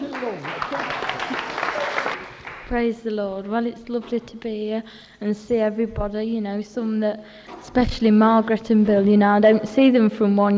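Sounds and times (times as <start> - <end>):
audience at a Christian holiday gathering applauding: 0.0 - 2.9
speech: 2.7 - 10.5.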